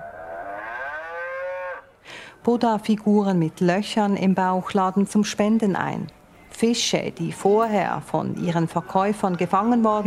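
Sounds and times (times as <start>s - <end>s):
artificial donation cow mooing at a temple in Bangkok: 0.0s - 2.0s
speech: 2.4s - 10.0s.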